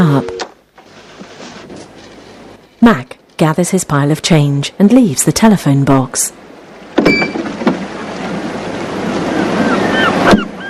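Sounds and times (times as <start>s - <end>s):
speech: 2.8s - 6.5s, 7.1s - 7.4s
waves washing over rocks in a bay: 6.6s - 10.6s
faint high bird calls: 9.1s - 10.6s.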